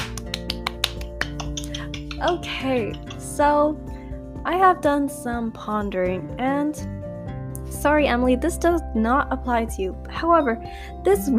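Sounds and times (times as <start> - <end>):
small group clapping: 0.0 - 3.3
speech: 2.2 - 7.0, 7.8 - 11.3.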